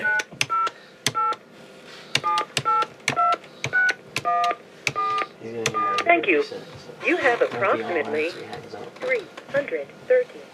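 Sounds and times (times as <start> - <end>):
telephone keypad dialing tones: 0.0 - 1.4, 2.2 - 6.1
speech: 6.3 - 10.5.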